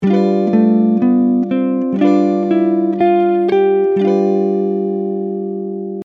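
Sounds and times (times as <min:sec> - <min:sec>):
G Mixolydian scale with G major chord: 0:00.0 - 0:06.0.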